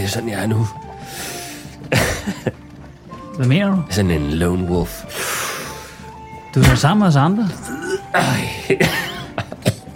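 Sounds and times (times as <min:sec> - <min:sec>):
speech: 0:00.1 - 0:02.6, 0:03.4 - 0:05.3, 0:06.6 - 0:09.1
person coughing while smoking a cigarette: 0:01.9 - 0:02.5, 0:07.6 - 0:09.9.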